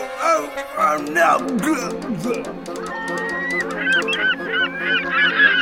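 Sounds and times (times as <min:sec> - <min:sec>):
speech: 0:00.1 - 0:05.0
flock of seagulls squawking: 0:02.8 - 0:05.6.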